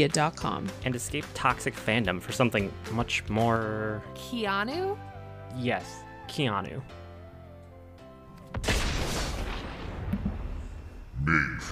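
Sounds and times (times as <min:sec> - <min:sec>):
speech: 0:00.0 - 0:07.0, 0:11.2 - 0:11.7
explosion with deep boom and crackling debris: 0:08.5 - 0:11.2.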